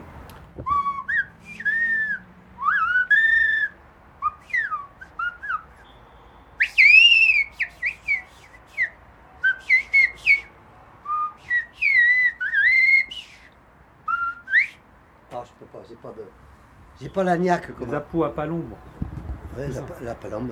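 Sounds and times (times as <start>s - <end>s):
person whistling imitation of blackbird song: 0.6s - 6.0s, 6.6s - 14.8s
speech: 17.0s - 19.0s, 19.6s - 20.5s.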